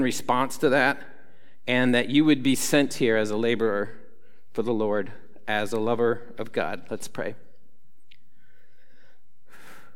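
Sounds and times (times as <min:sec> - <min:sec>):
speech: 0:00.0 - 0:04.0, 0:04.6 - 0:07.4
deep breath: 0:01.2 - 0:01.6, 0:08.2 - 0:09.9.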